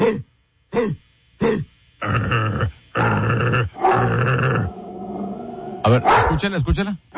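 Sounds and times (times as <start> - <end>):
speech: 0.0 - 2.8, 5.9 - 7.1
dog growling harshly: 2.1 - 6.4
dog barking: 5.9 - 6.4.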